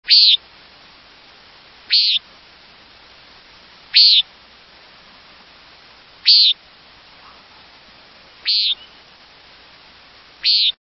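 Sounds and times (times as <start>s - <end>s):
Common Nighthawk songs: 0.0s - 0.4s, 1.9s - 2.2s, 3.9s - 4.3s, 6.2s - 6.6s, 8.4s - 9.1s, 10.4s - 10.8s.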